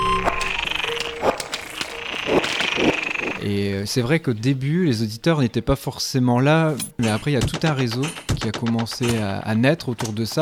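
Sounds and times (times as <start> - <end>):
frogs croaking in distress in a pond below a slag heap in Nord-Pas-de-Calais France: 0.0 - 4.1
speech: 3.5 - 10.3.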